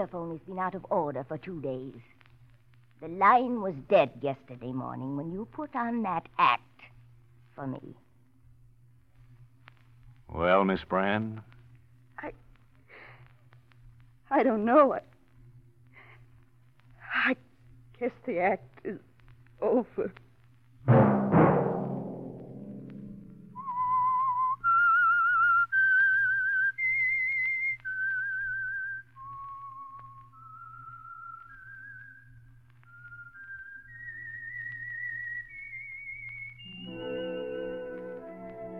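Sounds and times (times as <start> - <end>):
speech: 0.0 - 2.2, 3.0 - 6.9, 7.6 - 8.0, 10.3 - 11.5, 12.2 - 12.4, 14.3 - 15.1, 17.2 - 20.2, 20.9 - 21.2
soft low hum: 0.0 - 38.7
solo whistled theme melody used as a radio program's signal: 23.5 - 38.7
brief orchestral chord: 36.7 - 38.7.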